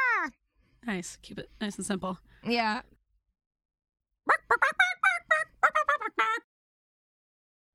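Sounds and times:
speech: 0.2s - 2.9s, 4.5s - 4.8s
harsh choppy bird clucks: 4.3s - 6.4s.

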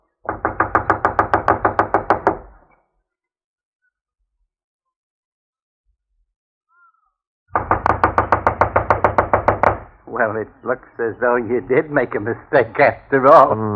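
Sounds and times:
rapid knocking on the back door of a run-down unoccupied house: 0.2s - 2.5s, 7.6s - 10.0s
speech: 10.2s - 13.7s.

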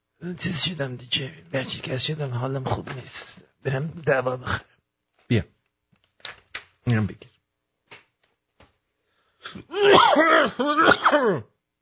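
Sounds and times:
speech: 0.2s - 4.7s, 5.3s - 5.6s, 6.8s - 7.3s, 9.5s - 11.5s
harsh throaty coughing: 9.4s - 11.6s.

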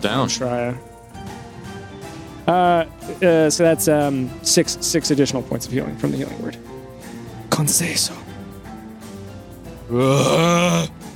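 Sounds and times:
speech: 0.0s - 1.4s, 2.5s - 6.8s, 7.6s - 8.3s, 9.9s - 11.0s
pained yawn of relief with a groaning edge: 9.9s - 11.0s.

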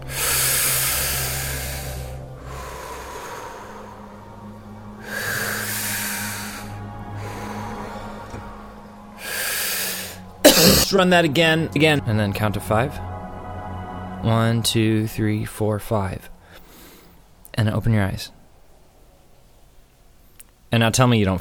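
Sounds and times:
deep breathing during a guided relaxation exercise: 0.0s - 10.5s, 16.4s - 17.4s
speech: 10.9s - 13.1s, 14.2s - 16.3s, 17.6s - 18.4s, 20.7s - 21.3s.

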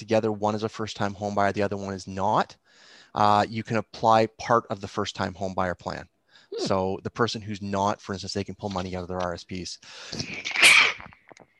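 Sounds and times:
speech: 0.0s - 11.2s
person breathing: 2.6s - 3.2s, 6.3s - 6.7s, 9.8s - 10.2s
single loud sneeze: 6.5s - 6.8s, 10.2s - 11.1s.

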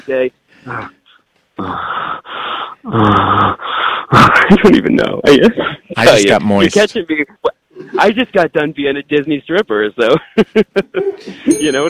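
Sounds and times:
speech: 0.0s - 1.0s, 1.6s - 11.8s
person fake moaning and groaning: 0.6s - 4.5s
laughter: 7.7s - 8.2s, 10.0s - 11.7s.

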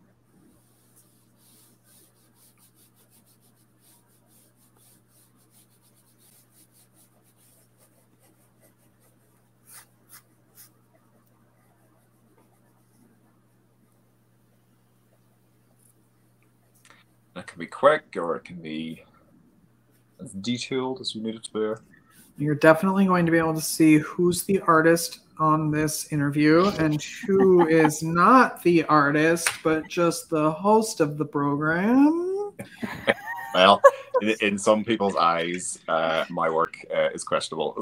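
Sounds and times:
low steady electrical hum: 0.0s - 37.7s
Apple Pencil sketching on a tablet screen: 0.2s - 17.3s, 21.8s - 32.5s
speech: 17.6s - 19.1s, 20.3s - 37.7s
laughter: 26.6s - 28.4s, 32.6s - 36.7s.

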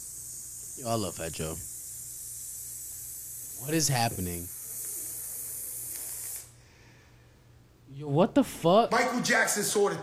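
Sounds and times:
steady bright sizzling hiss: 0.0s - 6.6s
speech: 0.8s - 1.7s, 3.6s - 4.6s, 7.9s - 10.0s.

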